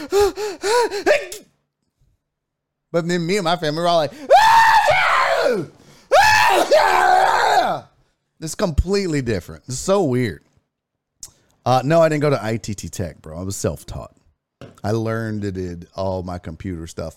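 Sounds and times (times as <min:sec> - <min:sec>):
speech: 0:00.0 - 0:01.4, 0:02.9 - 0:04.6, 0:05.4 - 0:05.8, 0:06.6 - 0:10.5, 0:11.6 - 0:14.2, 0:14.8 - 0:17.1
person imitating a family member's sneeze buildup with breathy gasps: 0:00.0 - 0:01.5.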